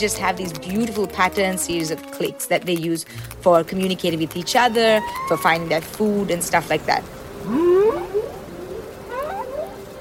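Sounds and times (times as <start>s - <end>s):
speech: 0.0s - 7.6s
humpback whale song: 5.0s - 5.6s, 7.4s - 9.9s.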